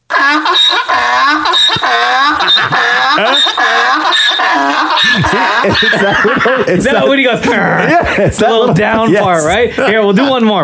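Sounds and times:
real donkey braying: 0.1 - 6.6
laughter: 0.2 - 10.2
speech: 4.2 - 10.6.

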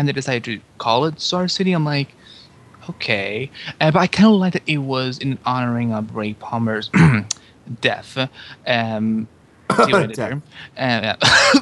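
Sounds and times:
speech: 0.0 - 11.6
person coughing: 6.9 - 7.3, 9.7 - 10.3, 11.2 - 11.6
person clearing throat: 6.9 - 7.4, 9.7 - 10.3, 11.2 - 11.6
strained vocal sounds: 9.7 - 10.5.

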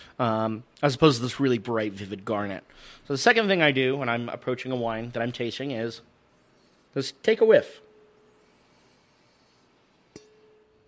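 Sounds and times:
quiet steady hum: 0.0 - 10.8
speech: 0.2 - 6.1, 6.9 - 7.8
wine glass tapped during a wine tasting: 10.1 - 10.8.

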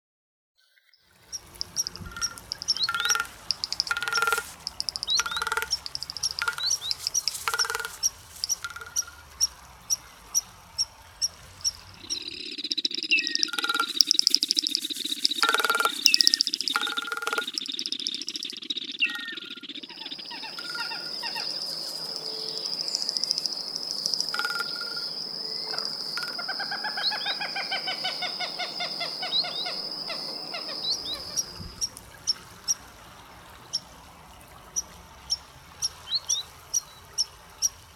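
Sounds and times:
constant insect-like hum: 1.2 - 32.8
birds singing bright repeated phrases: 1.3 - 10.0, 11.6 - 32.0.

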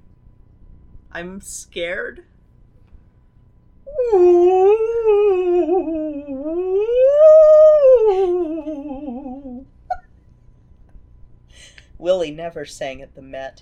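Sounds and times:
speech: 1.2 - 2.3, 3.9 - 6.0, 12.0 - 13.6
voice imitating an eerie ghost whale call: 3.9 - 9.7.

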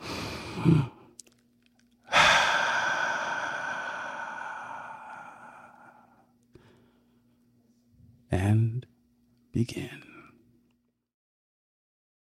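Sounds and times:
person taking a deep breath: 0.0 - 1.0, 2.1 - 7.2
speech: 0.6 - 1.0, 9.6 - 10.1.

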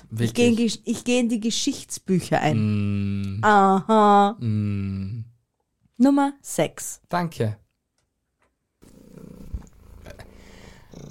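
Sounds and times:
speech: 0.1 - 5.3, 6.0 - 7.6
cat purring: 8.8 - 11.0.

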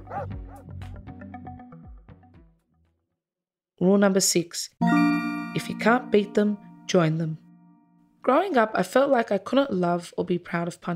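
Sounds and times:
dog whimpering: 0.0 - 0.3
dog barking and yipping: 0.0 - 0.7
speech: 0.1 - 0.8, 3.8 - 7.4, 8.2 - 10.9.

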